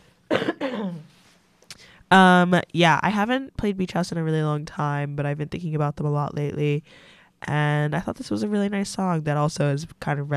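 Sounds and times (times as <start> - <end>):
person coughing: 0.3 - 1.1
speech: 0.6 - 1.1, 2.1 - 10.3.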